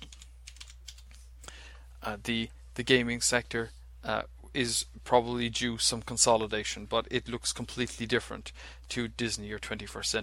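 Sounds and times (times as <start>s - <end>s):
typing on a computer keyboard: 0.0s - 1.1s
speech: 2.0s - 10.2s.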